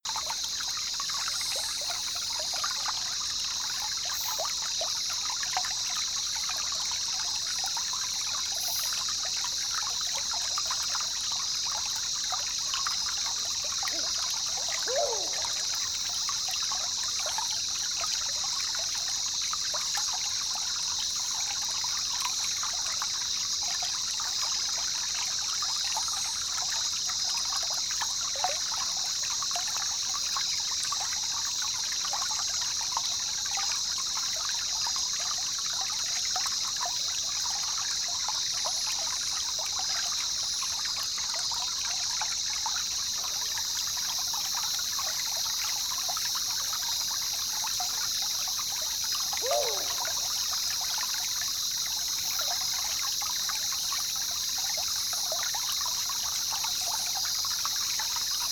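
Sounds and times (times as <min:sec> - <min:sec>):
calm river flowing in the jungle: 0:00.1 - 0:58.5.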